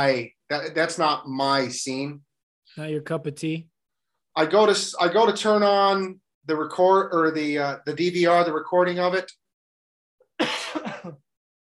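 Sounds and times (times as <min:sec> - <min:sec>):
speech: 0:00.0 - 0:03.7, 0:04.4 - 0:09.4
person clearing throat to ease a tickle: 0:10.3 - 0:11.3.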